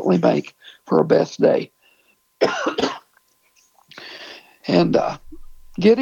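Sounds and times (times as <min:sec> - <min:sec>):
speech: 0:00.1 - 0:01.8, 0:02.4 - 0:02.9, 0:04.7 - 0:06.0
loud rough coughs: 0:02.4 - 0:03.2.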